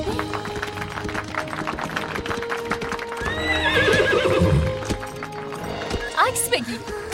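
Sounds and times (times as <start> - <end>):
show horse hooves clip-clopping during dressage and trotting: 0.0 - 7.1
show horse loud rising whinny: 3.2 - 4.9.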